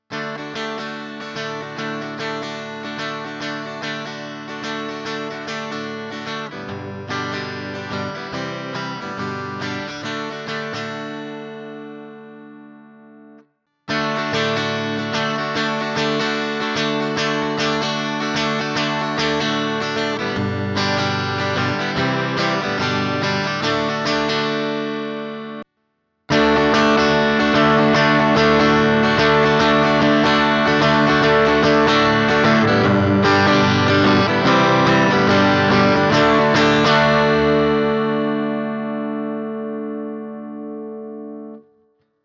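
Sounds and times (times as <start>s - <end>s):
Katana Clean Boost guitar: 0.0s - 25.6s, 26.3s - 41.7s.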